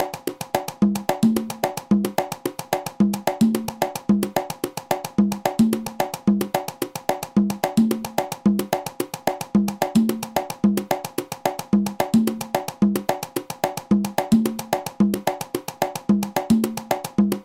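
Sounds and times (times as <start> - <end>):
conga drum: 0.0 - 17.4.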